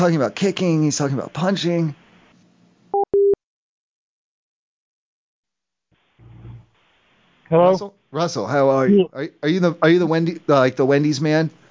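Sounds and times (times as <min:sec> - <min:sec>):
speech: 0:00.0 - 0:02.0, 0:07.5 - 0:11.6
electronic telephone beeps after a call is hung up: 0:03.0 - 0:03.4.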